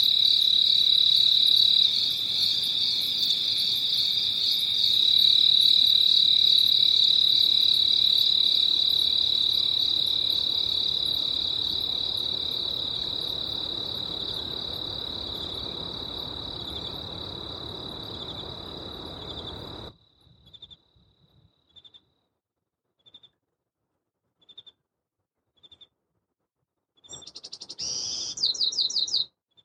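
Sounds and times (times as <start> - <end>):
crickets chirping at night: 0.0 - 22.0
bird singing at dawn in chaparral: 27.0 - 29.3.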